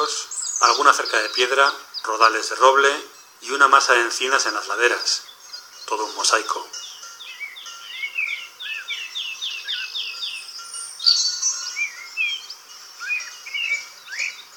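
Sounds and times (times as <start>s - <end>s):
blackbirds singing: 0.0s - 14.5s
speech: 0.6s - 5.3s, 5.9s - 6.9s.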